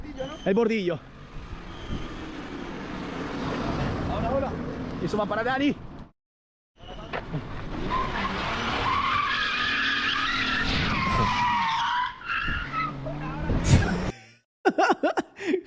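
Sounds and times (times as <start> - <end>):
tires squealing as a car loaded with passengers skids through a street drift: 0.0 - 4.4, 6.8 - 14.1
speech: 0.4 - 1.2, 5.0 - 5.9, 7.3 - 8.3
laughter: 13.8 - 15.6.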